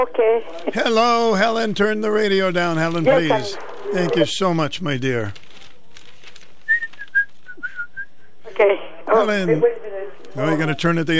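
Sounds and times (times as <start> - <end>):
speech: 0.0 - 5.4, 8.6 - 11.1
person whistling high notes: 6.7 - 8.3.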